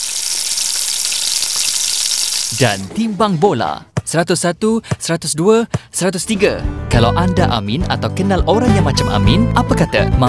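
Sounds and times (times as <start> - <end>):
fried rice sizzling in a hot pan: 0.0 - 2.8
speech: 2.6 - 10.2.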